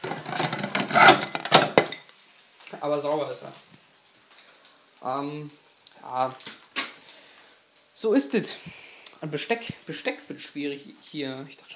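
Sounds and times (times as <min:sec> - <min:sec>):
ceramic dishes clattering as a deep plate is pulled from a stack: 0:00.2 - 0:02.1
speech: 0:02.8 - 0:03.7, 0:05.0 - 0:06.6, 0:08.0 - 0:11.7.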